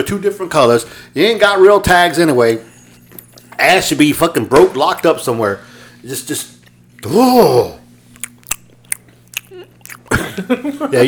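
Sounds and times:
speech: 0:00.0 - 0:02.7, 0:03.6 - 0:07.8, 0:10.1 - 0:11.0
steady low electrical hum: 0:00.0 - 0:11.0
crunchy chewing of food: 0:08.1 - 0:10.4.

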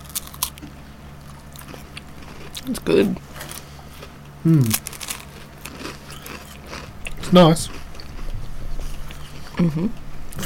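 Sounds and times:
biting and crunching a chocolate wafer bar with puffed rice: 0:00.0 - 0:08.1
low hum: 0:00.0 - 0:10.4
speech: 0:02.6 - 0:03.5, 0:04.4 - 0:04.9, 0:07.3 - 0:07.8, 0:09.6 - 0:10.4.

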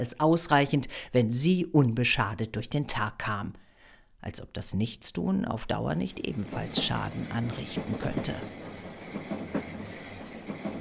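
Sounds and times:
speech: 0:00.0 - 0:03.6, 0:04.2 - 0:09.3
railway carriage rumbling along the tracks: 0:05.8 - 0:10.7.

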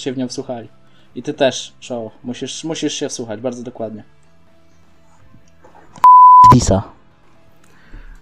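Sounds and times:
speech: 0:00.0 - 0:04.2, 0:06.5 - 0:07.0
steady censorship bleep tone: 0:06.0 - 0:06.6.

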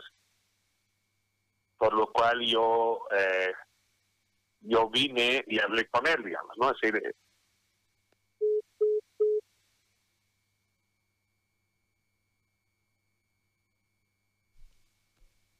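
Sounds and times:
speech: 0:01.8 - 0:03.7, 0:04.6 - 0:07.2
short steady electronic beeps of a phone line's busy tone: 0:08.4 - 0:09.4.

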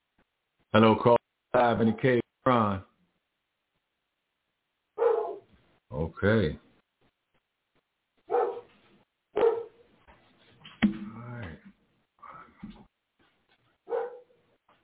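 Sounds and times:
speech: 0:00.7 - 0:02.2, 0:06.2 - 0:06.7
dog barking: 0:05.0 - 0:05.5, 0:08.3 - 0:08.7, 0:09.3 - 0:09.8, 0:13.8 - 0:14.4.

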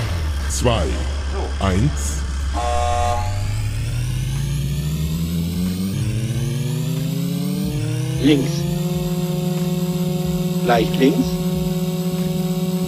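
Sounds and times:
race car engine revving and accelerating: 0:00.0 - 0:12.8
speech: 0:00.5 - 0:02.9, 0:08.2 - 0:08.6, 0:10.7 - 0:11.4
brief horn-like toot: 0:02.5 - 0:03.6.

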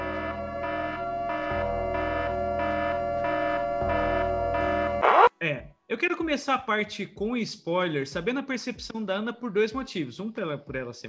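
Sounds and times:
two-tone siren sound effect wailing: 0:00.0 - 0:05.3
speech: 0:05.4 - 0:11.0.

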